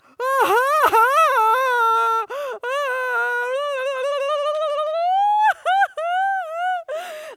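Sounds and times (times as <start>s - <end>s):
person wailing and sobbing: 0.2s - 7.3s
gasping breaths: 6.9s - 7.3s.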